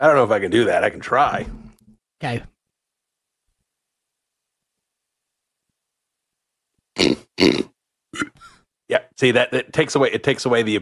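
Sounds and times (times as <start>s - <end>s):
speech: 0.0s - 1.6s, 2.2s - 2.5s, 7.4s - 7.7s, 8.9s - 10.8s
loud throaty burps into microphone: 7.0s - 8.5s.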